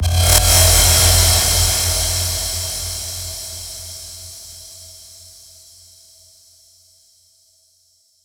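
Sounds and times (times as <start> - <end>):
ambience: 0.0 - 4.8.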